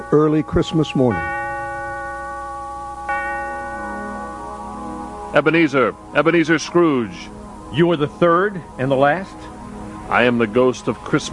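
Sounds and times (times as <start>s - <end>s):
single deep steeple bell tolling: 0.0s - 8.0s
speech: 0.1s - 1.3s, 5.3s - 9.4s, 10.1s - 11.3s.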